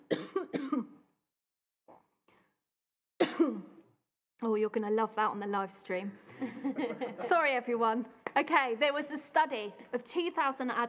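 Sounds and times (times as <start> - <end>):
sharp coughs: 0.0 - 1.1, 3.2 - 3.9
speech: 4.4 - 10.8
laughter: 6.3 - 7.4.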